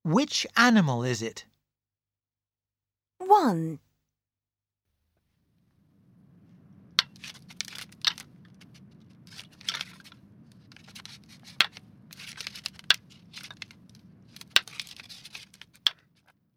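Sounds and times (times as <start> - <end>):
speech: 0.0 - 1.5, 3.2 - 3.9
rustling and crackling: 5.0 - 16.4
steady low rumble: 5.1 - 16.0
deer antlers clacking while fighting: 7.0 - 16.1.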